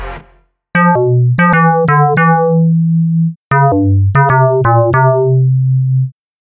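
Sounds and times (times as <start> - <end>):
Synclavier synthesizer bass: 0.8 - 6.1.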